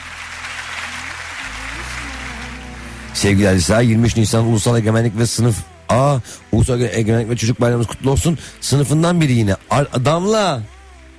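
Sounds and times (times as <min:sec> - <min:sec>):
applause at a Children's Day celebration: 0:00.0 - 0:04.4, 0:07.5 - 0:11.1
low hum: 0:00.0 - 0:09.9
speech: 0:03.2 - 0:10.7.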